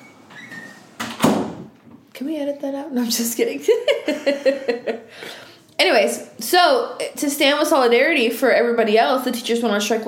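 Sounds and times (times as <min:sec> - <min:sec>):
door being pushed shut: 0:00.0 - 0:02.0
speech: 0:02.2 - 0:10.0
laughter: 0:03.7 - 0:05.2.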